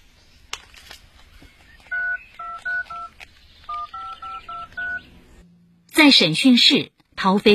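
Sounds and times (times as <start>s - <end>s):
telephone keypad dialing tones: 1.6s - 5.0s
speech: 6.0s - 7.5s.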